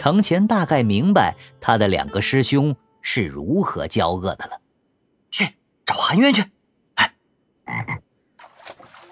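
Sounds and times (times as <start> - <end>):
speech: 0.0 - 4.6, 5.3 - 6.6, 7.7 - 8.1
toad croaking: 7.6 - 8.1.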